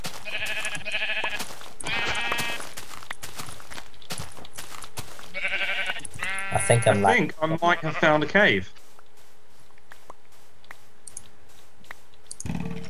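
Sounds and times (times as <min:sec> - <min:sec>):
sheep bleating: 0:00.1 - 0:02.7, 0:05.3 - 0:08.4
speech: 0:06.7 - 0:08.8.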